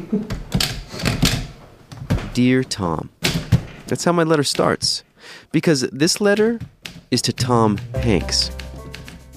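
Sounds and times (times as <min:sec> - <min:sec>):
speech: 0:00.1 - 0:00.4, 0:02.3 - 0:03.1, 0:03.9 - 0:08.6
typewriter keys clacking while typing a letter: 0:06.8 - 0:09.3.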